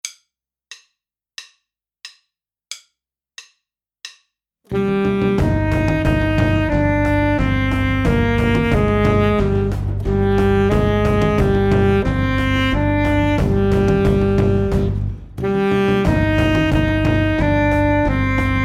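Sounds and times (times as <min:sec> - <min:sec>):
saxophone melody in Phrygian mode: 0:04.7 - 0:18.6.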